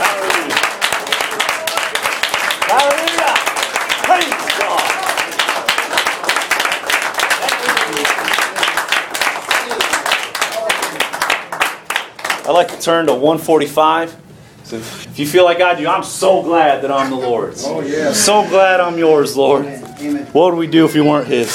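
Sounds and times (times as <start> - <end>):
audience clapping in praise to God: 0.0 - 12.8
speech: 12.8 - 21.5.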